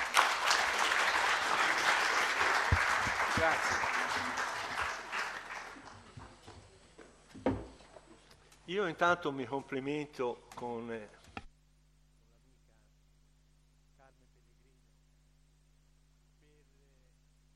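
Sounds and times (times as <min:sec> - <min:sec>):
audience applause: 0:00.0 - 0:06.5
speech: 0:03.4 - 0:04.4, 0:08.7 - 0:11.2.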